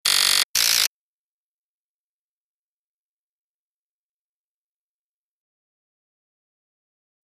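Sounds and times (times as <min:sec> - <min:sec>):
two-tone buzz: 0:00.0 - 0:00.9.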